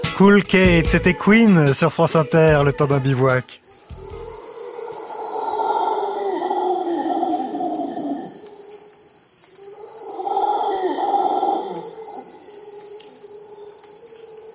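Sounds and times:
speech: 0:00.2 - 0:03.8
high-pitched insect drone in the forest in Costa Rica: 0:03.6 - 0:14.5
howler monkey howls in the forest in Costa Rica: 0:03.6 - 0:14.5.

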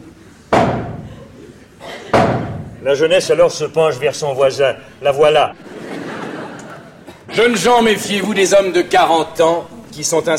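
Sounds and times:
low hum: 0:00.0 - 0:10.3
stage manager's heavy wooden knocks before theatre curtain rises: 0:00.5 - 0:01.2, 0:02.1 - 0:02.8
laughter: 0:01.0 - 0:02.2, 0:05.6 - 0:08.4
speech: 0:02.8 - 0:05.7, 0:07.3 - 0:10.3.

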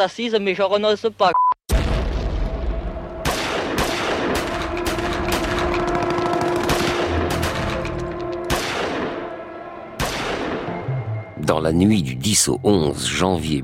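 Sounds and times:
speech: 0:00.0 - 0:01.8, 0:11.5 - 0:13.6
loud explosion during police assault: 0:01.7 - 0:05.6
dense rumbling background of combat noise: 0:01.7 - 0:09.1
rapid bursts of gunfire during police assault: 0:03.2 - 0:07.9, 0:08.5 - 0:09.3, 0:10.0 - 0:10.7.

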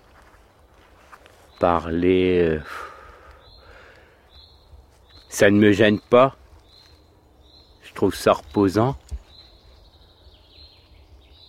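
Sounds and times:
faint birdsong in a very quiet forest: 0:00.0 - 0:11.4
speech: 0:01.6 - 0:02.9, 0:05.4 - 0:06.4, 0:08.0 - 0:09.1.

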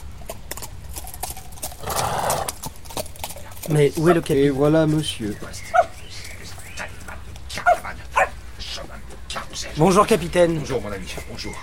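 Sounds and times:
horse hooves clip-clopping returning from a ride: 0:00.0 - 0:11.6
horse neighing: 0:01.7 - 0:02.7
speech: 0:03.7 - 0:05.7, 0:09.8 - 0:11.6.

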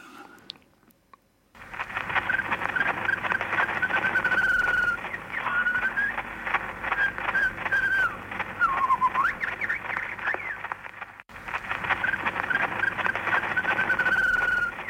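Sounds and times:
wax-cylinder recording hiss, crackle and surface noise: 0:00.0 - 0:14.8
white-rumped shama singing on an 1889 wax-cylinder recording: 0:02.1 - 0:06.3, 0:06.9 - 0:10.7, 0:11.9 - 0:14.8.

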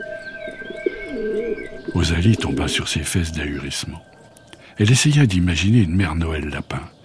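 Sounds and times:
turtle dove cooing: 0:00.0 - 0:04.8
speech: 0:01.9 - 0:04.2, 0:04.8 - 0:07.0.

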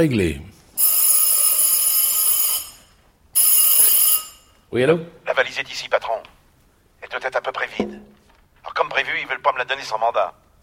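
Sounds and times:
speech: 0:00.0 - 0:00.5, 0:04.7 - 0:06.3, 0:08.9 - 0:10.4
telephone ringing with a metallic bell: 0:00.8 - 0:04.6.

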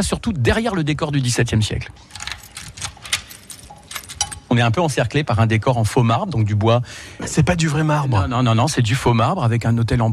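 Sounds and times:
speech: 0:00.0 - 0:02.4, 0:04.5 - 0:10.1
keys jangling to unlock a chapel door: 0:02.0 - 0:04.6.

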